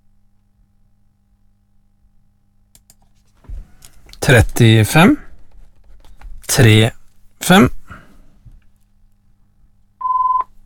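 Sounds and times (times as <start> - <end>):
low hum: 0.0 - 10.6
speech: 4.2 - 5.2, 6.5 - 7.8
telephone ringing with a single short electronic tone: 10.0 - 10.5.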